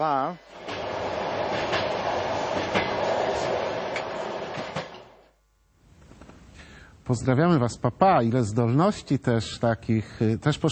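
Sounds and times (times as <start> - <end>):
speech: 0.0 - 0.6, 7.1 - 10.7
moving train carriage rumbling on the Trans-Siberian railway: 0.5 - 5.2
sharp rail clacks of the Trans-Siberian railway: 0.6 - 5.2.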